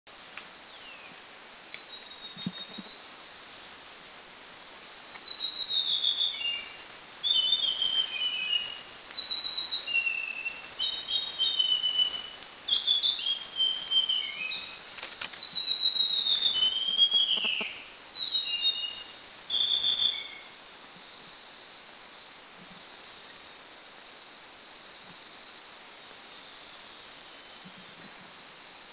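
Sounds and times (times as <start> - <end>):
White-browed Shortwing Brachypteryx montana singing at Kitanglad: 0.7 - 20.6.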